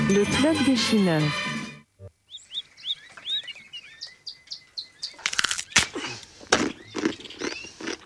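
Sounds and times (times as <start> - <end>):
speech: 0.1 - 1.5
small birds chirping: 2.0 - 8.0.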